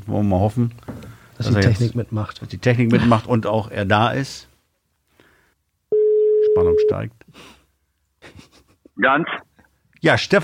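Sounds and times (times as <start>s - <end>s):
speech: 0.1s - 4.5s, 6.6s - 7.6s, 8.2s - 9.4s, 10.0s - 10.4s
telephone ringing tone as a call connects: 5.9s - 6.9s.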